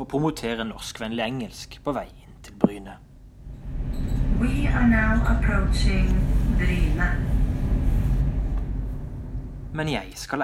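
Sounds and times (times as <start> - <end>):
speech: 0.0 - 3.0, 4.4 - 7.3, 9.7 - 10.4
deep rumble inside a moving train in Norway: 3.7 - 9.4.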